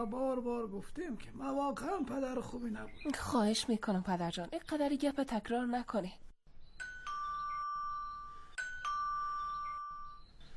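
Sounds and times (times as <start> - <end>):
speech: 0.0 - 6.3
two-tone ding-dong doorbell ringing: 6.8 - 10.3.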